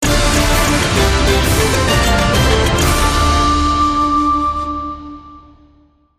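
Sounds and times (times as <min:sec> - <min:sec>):
free spin outro jingle: 0:00.0 - 0:04.9.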